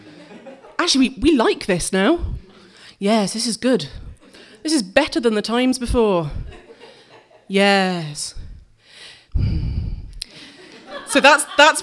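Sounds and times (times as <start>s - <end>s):
laughter: 0.0s - 0.8s, 6.4s - 7.5s, 10.3s - 11.8s
speech: 0.8s - 2.3s, 3.0s - 4.0s, 4.6s - 6.5s, 7.5s - 8.4s, 11.1s - 11.8s
heavy breath blown into the microphone: 2.1s - 3.0s, 3.8s - 4.7s, 5.9s - 7.4s, 8.2s - 11.0s
faint sharp breath intake: 2.2s - 3.0s, 3.9s - 4.7s, 8.3s - 10.8s.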